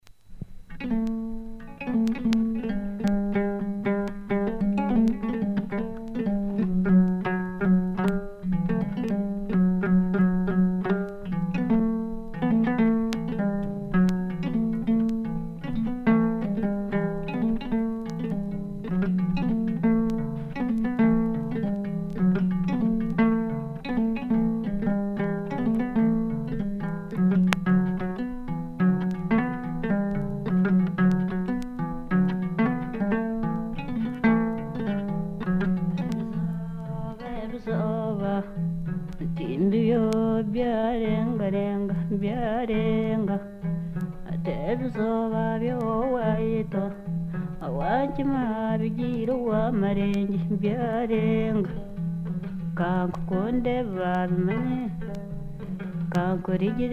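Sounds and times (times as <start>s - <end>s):
Hima enanga zither from Uganda: 0.7s - 56.9s.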